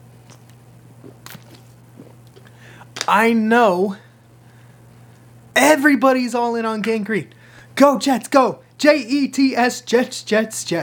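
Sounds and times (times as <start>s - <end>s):
steady low electrical hum: 0.0s - 10.8s
person taking a quick swig of water with faint gulping: 0.2s - 3.1s
speech: 3.1s - 4.0s, 5.6s - 10.8s.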